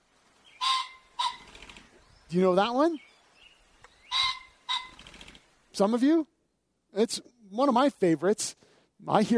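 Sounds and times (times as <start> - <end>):
Ring-necked Pheasant territorial call with harsh crowing notes: 0.4 - 1.9, 3.9 - 5.4
speech: 2.3 - 3.1, 5.8 - 6.3, 6.9 - 9.3.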